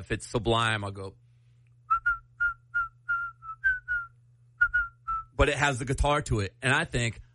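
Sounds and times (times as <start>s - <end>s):
speech: 0.0s - 1.2s, 5.4s - 7.2s
person whistling a short bouncy melody: 1.9s - 5.3s.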